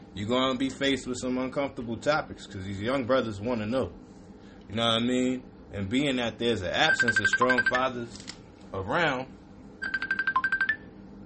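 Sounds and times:
speech: 0.2 - 4.1, 4.7 - 9.4
mobile phone ringtone of bright electronic beeps: 6.9 - 7.8, 9.8 - 10.9.

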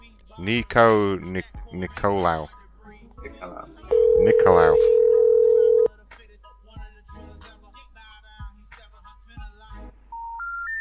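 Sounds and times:
speech: 0.4 - 2.6, 3.2 - 5.1
electronic beeps of an outgoing call: 3.9 - 5.9
steady telephone line tone: 3.9 - 5.9.

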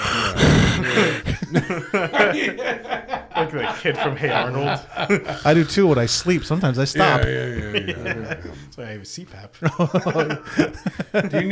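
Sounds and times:
short breathy bursts: 0.0 - 1.6, 4.8 - 8.8
heavy breathing: 0.0 - 2.6, 4.6 - 8.8, 10.3 - 11.2
laughter: 0.0 - 11.5
speech: 1.5 - 11.5.

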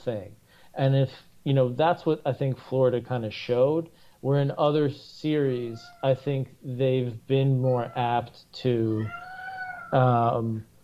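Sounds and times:
speech: 0.0 - 9.3, 9.9 - 10.7
cat meowing: 5.7 - 6.2, 7.7 - 8.2, 8.9 - 10.2.

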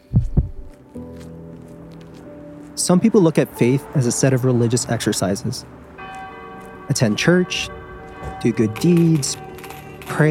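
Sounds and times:
deep heartbeat in a lub-dub pattern: 0.0 - 0.8
speech: 2.8 - 5.9, 6.9 - 7.8, 8.4 - 9.5.

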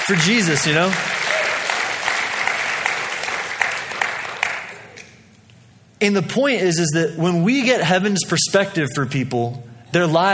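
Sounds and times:
crowd applauding: 0.0 - 5.1
speech: 0.1 - 1.3, 6.0 - 10.3.

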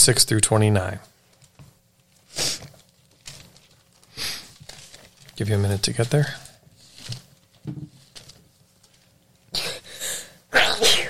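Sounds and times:
speech: 0.0 - 1.1, 5.4 - 6.4
loud sneeze: 10.5 - 11.0.

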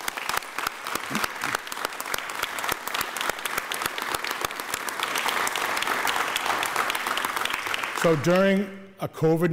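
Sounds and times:
audience applause: 0.0 - 8.6
speech: 8.0 - 9.5.

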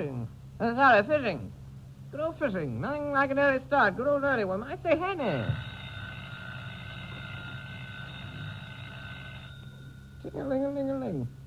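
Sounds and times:
speech: 0.6 - 5.7, 10.2 - 11.4
telephone ringing: 5.1 - 10.9.

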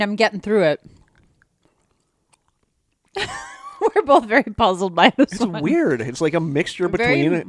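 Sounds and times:
speech: 0.0 - 0.9, 3.2 - 7.4
chewing a hard stale gummy candy: 0.8 - 3.2.

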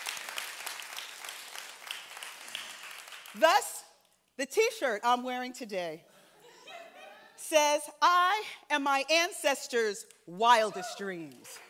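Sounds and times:
audience applause: 0.0 - 3.3
speech: 3.4 - 3.8, 4.4 - 6.1, 7.5 - 11.6
laughter: 6.3 - 7.4.

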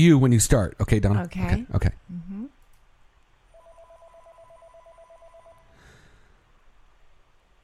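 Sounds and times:
speech: 0.0 - 2.1
hiss: 0.0 - 7.6
telephone ringing with an electronic trill: 3.5 - 5.8.

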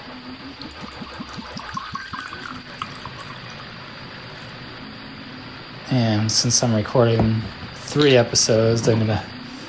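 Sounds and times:
beverage pouring into a glass: 0.6 - 3.8
speech: 5.9 - 9.3.

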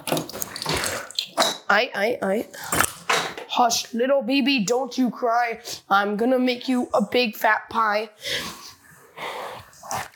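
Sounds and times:
warm water running from a tap: 0.0 - 1.3
speech: 1.7 - 8.6.

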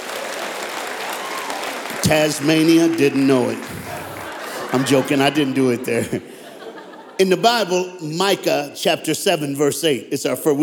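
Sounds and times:
crowd clapping: 0.0 - 6.1
laughter: 2.0 - 7.8
speech: 2.1 - 6.3, 7.2 - 10.6.

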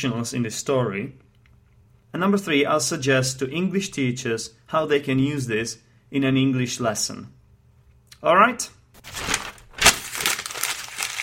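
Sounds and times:
speech: 0.0 - 1.3, 2.1 - 7.4, 8.2 - 8.8
sheet of paper with notes being crumpled: 9.0 - 11.2.

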